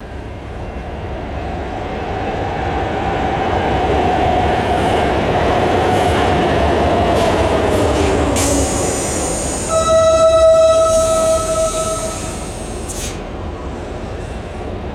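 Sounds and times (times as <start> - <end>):
light rail train arriving and stopping: 0.0 - 14.9.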